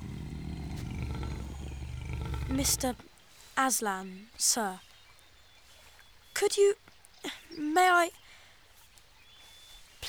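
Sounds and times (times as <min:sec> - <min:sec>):
lion roaring: 0:00.0 - 0:03.1
speech: 0:02.5 - 0:04.9, 0:06.4 - 0:08.2.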